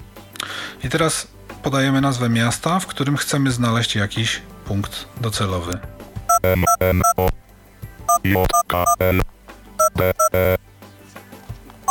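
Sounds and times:
speech: 0:00.8 - 0:07.4, 0:08.2 - 0:09.3, 0:10.0 - 0:10.6
electronic keypad beeps on a mobile phone: 0:06.3 - 0:07.4, 0:08.1 - 0:10.6.

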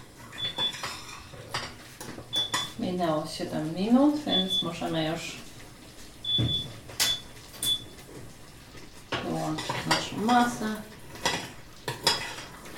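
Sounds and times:
teaspoon scraping and stirring sugar mixture in a pot: 0:00.3 - 0:02.7, 0:11.1 - 0:12.7
speech: 0:02.9 - 0:05.5, 0:06.4 - 0:06.8, 0:09.5 - 0:10.9.

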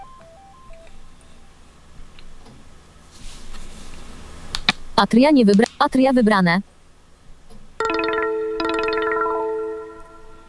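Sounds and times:
phone ringtone preview of bright electronic chime notes: 0:00.0 - 0:00.9, 0:07.8 - 0:10.4
speech: 0:05.0 - 0:06.7.

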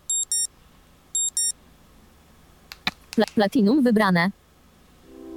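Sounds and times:
shrill piezo alarm tone from a phone: 0:00.0 - 0:00.5, 0:01.2 - 0:01.5
speech: 0:03.2 - 0:04.4.

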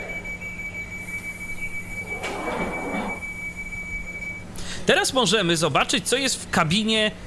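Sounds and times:
steady high-pitched warning tone: 0:00.0 - 0:04.2
low hum from the carriage: 0:01.0 - 0:04.3
left train doors in a train simulator sliding shut: 0:01.2 - 0:03.4
speech: 0:04.9 - 0:07.2.

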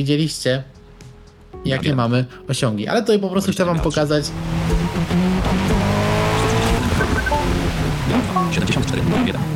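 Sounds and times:
speech: 0:00.0 - 0:00.8, 0:01.6 - 0:05.7
loud car engine revving and growling: 0:04.1 - 0:09.5.

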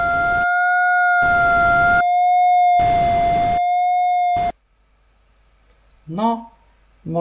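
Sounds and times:
electronic audio-graph tone with steady pitch: 0:00.0 - 0:04.6
speech: 0:06.2 - 0:07.1.

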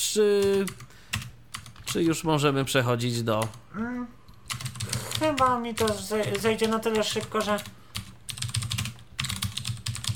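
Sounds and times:
speech: 0:00.1 - 0:00.9, 0:01.9 - 0:07.8
typing a licence key on a computer keyboard: 0:00.4 - 0:02.0, 0:04.5 - 0:10.1.

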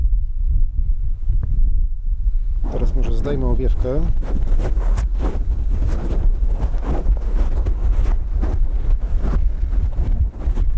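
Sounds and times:
strong wind outdoors buffeting a microphone with a windscreen: 0:00.0 - 0:10.7
speech: 0:02.9 - 0:05.6.

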